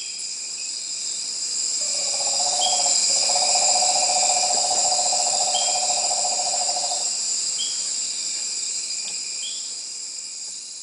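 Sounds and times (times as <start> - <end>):
steady high-pitched insect buzzing in a nighttime forest: 1.8 - 7.2.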